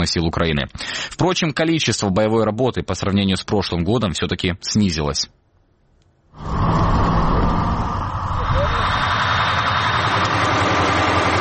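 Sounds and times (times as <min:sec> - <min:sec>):
speech: 0:00.0 - 0:05.4, 0:06.4 - 0:06.8
Ukrainian armed forces BM-21 Grad multiple rocket launcher truck engine idling: 0:06.6 - 0:11.3.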